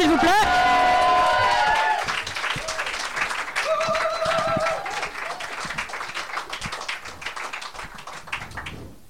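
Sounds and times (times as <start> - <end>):
audience whistles and cheers: 0.0 - 3.0, 3.6 - 5.6
audience applause for a slam poetry performer: 0.0 - 8.9.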